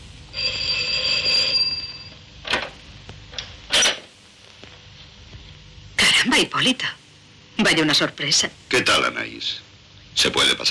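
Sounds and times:
electric doorbell trill: 0.3 - 2.2
speech: 6.4 - 7.0, 7.6 - 10.6.

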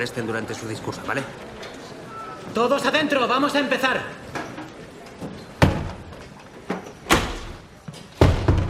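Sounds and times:
speech: 0.0 - 1.5, 2.6 - 4.2
door being bolted shut with wooden thuds and knocks: 8.2 - 8.6.

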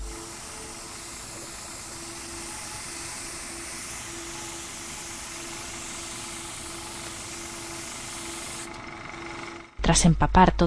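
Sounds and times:
spray bottle spraying the cover of a manual: 0.0 - 8.7.

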